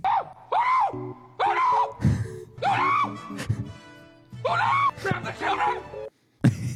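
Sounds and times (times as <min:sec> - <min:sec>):
person yelling frantic wordless gibberish during a fight: 0:00.0 - 0:03.4, 0:04.4 - 0:06.1.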